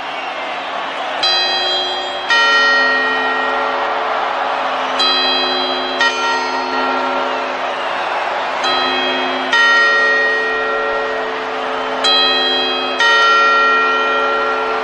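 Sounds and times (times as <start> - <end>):
church clock bells ringing the quarter chimes: 1.0 - 14.8.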